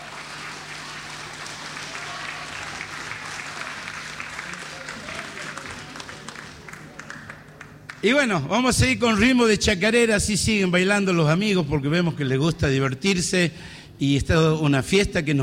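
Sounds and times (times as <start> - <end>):
audience clapping: 0.0 - 8.2
speech: 8.0 - 15.4.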